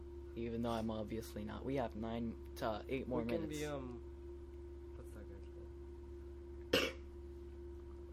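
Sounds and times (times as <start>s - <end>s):
hum: 0.0s - 8.1s
speech: 0.4s - 4.1s
person coughing: 6.7s - 7.1s.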